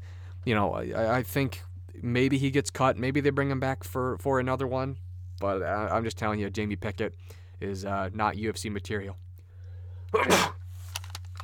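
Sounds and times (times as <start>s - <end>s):
steady low hum: 0.0s - 11.4s
speech: 0.4s - 9.2s, 10.1s - 10.5s
single hard explosive sneeze: 10.1s - 10.7s.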